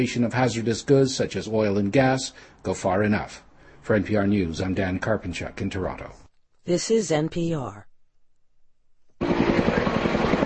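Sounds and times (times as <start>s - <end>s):
speech: 0.0s - 7.9s
firefighting helicopters flying over wildfires in New South Wales, Australia: 9.2s - 10.4s.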